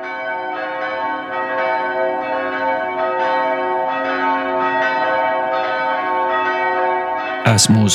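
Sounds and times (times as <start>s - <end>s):
cathedral church bells ringing in a square: 0.0s - 7.9s
speech: 7.5s - 7.9s.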